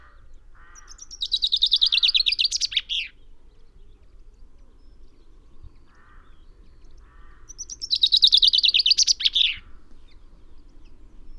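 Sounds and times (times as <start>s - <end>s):
common chaffinch Fringilla coelebs song: 0.9s - 3.2s, 7.5s - 9.6s.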